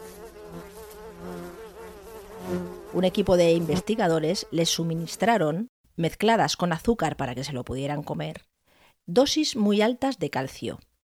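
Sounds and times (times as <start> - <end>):
fruit flies buzzing: 0.0 - 5.3
speech: 2.9 - 10.9.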